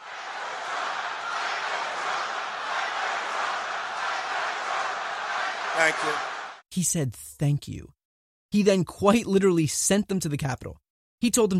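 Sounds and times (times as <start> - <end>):
large crowd chanting a slogan in unison: 0.0 - 6.6
speech: 5.8 - 11.5.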